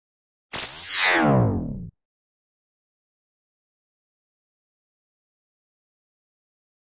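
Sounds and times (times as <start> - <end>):
high-frequency electric buzz stab: 0.6 - 1.9.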